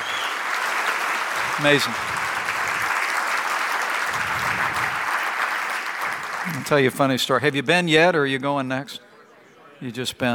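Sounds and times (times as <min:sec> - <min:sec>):
sustained audience applause: 0:00.0 - 0:07.4
speech: 0:01.6 - 0:02.1, 0:06.5 - 0:09.1, 0:09.8 - 0:10.3.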